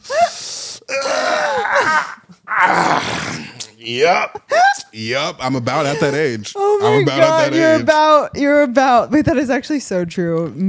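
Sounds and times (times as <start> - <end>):
person groaning: 0.9 - 4.4
speech: 3.9 - 10.6.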